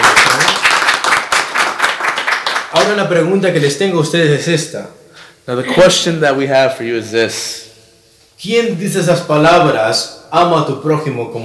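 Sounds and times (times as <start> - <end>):
church congregation clapping in praise: 0.0 - 3.2
speech: 2.9 - 7.7, 8.4 - 11.4.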